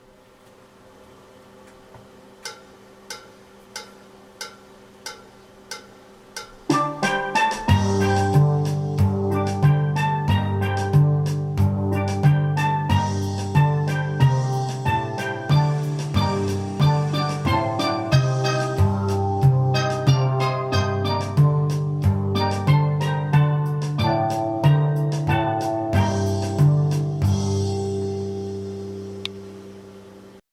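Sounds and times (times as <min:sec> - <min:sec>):
steel band playing three voices with bass: 0:06.7 - 0:29.9.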